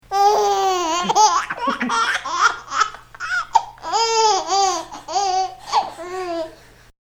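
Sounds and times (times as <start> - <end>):
boy laughing: 0.3 - 6.7.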